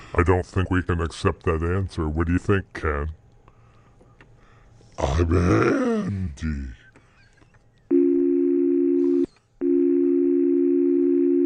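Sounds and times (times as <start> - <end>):
speech: 0.1 - 3.2, 5.0 - 6.8
voice imitating a telephone dial tone: 7.9 - 11.4.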